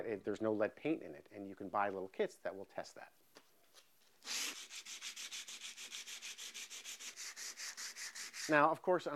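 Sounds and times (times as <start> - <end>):
speech: 0.0 - 3.2, 8.5 - 9.1
coarse 60-grit sandpaper rubbed by hand over wood: 4.2 - 8.8.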